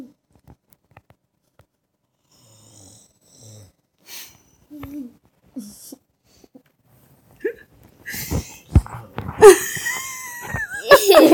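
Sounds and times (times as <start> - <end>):
man snoring: 2.3 - 3.8
laughter: 9.4 - 11.3.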